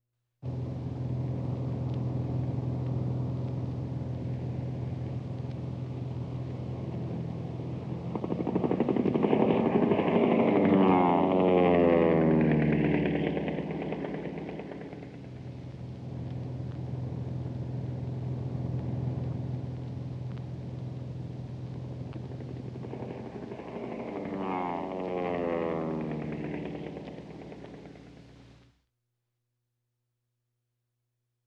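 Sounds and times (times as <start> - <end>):
fighter plane in action: 0.4 - 28.7.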